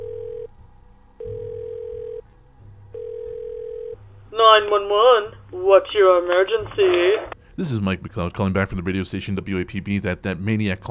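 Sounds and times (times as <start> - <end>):
telephone dial tone over a receiver: 0.0 - 0.5, 1.2 - 2.2, 3.0 - 4.0
low rumble: 0.0 - 10.8
speech: 4.5 - 10.8.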